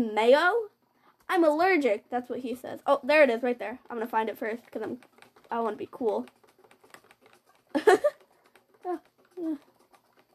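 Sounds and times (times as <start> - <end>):
speech: 0.0 - 0.7, 1.3 - 6.4, 7.7 - 8.2, 8.8 - 9.7
rapid computer mouse clicking: 3.8 - 10.3.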